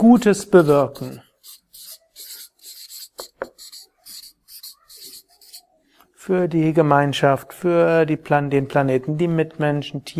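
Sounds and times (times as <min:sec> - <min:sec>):
speech: 0:00.0 - 0:01.6, 0:06.3 - 0:10.1
handwriting scratching strokes: 0:00.4 - 0:05.7.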